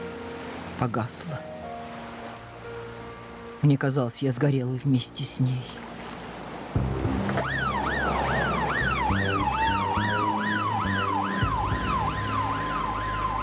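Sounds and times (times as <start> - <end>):
speech: 0.8 - 1.6, 3.6 - 5.9
traffic noise: 6.5 - 13.4
ambulance siren wailing in rising-and-falling sweeps: 7.3 - 13.4.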